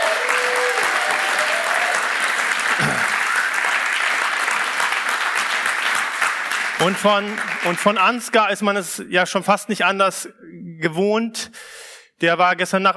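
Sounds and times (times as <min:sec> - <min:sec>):
whistle or cheer: 0:00.0 - 0:02.0
audience applause: 0:00.0 - 0:08.3
speech: 0:06.8 - 0:11.6, 0:12.2 - 0:12.9.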